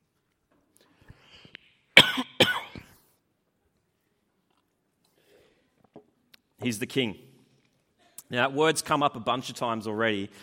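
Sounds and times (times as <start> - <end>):
breaths: 0.8 - 2.0, 5.0 - 5.9, 10.3 - 10.4
sharp loud coughs: 2.0 - 3.0
speech: 6.6 - 7.3, 8.3 - 10.4.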